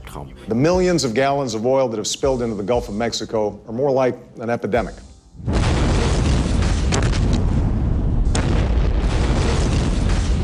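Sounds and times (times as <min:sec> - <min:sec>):
speech: 0:00.1 - 0:05.7
massive sustained nuclear reactor explosion with deep rumbling and crackling bursts: 0:05.4 - 0:10.4
sharp blast: 0:05.4 - 0:10.4.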